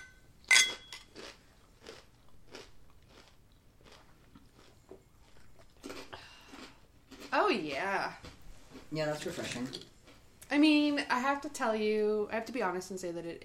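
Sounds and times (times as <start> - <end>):
rhythmic crunching chews of crinkle-cut potato chips: 1.0 - 7.3
sharp loud bite into crinkle-cut potato chips: 1.1 - 7.3
speech: 7.5 - 8.3, 8.9 - 9.9, 10.5 - 13.4.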